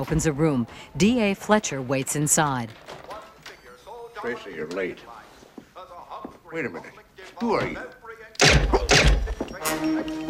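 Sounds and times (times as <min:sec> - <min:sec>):
speech: 0:00.0 - 0:03.0, 0:04.2 - 0:05.2, 0:06.5 - 0:09.1, 0:09.7 - 0:10.2
silenced gunshots: 0:08.4 - 0:09.3.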